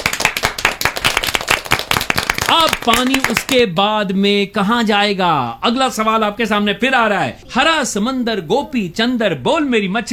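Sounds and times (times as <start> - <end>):
audience applause: 0.0 - 3.6
speech: 2.8 - 10.1.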